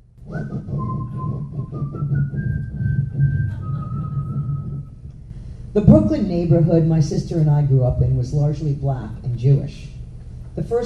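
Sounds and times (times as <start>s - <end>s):
person whistling a slow tune: 0.2s - 5.0s
speech: 5.8s - 9.9s, 10.6s - 10.8s.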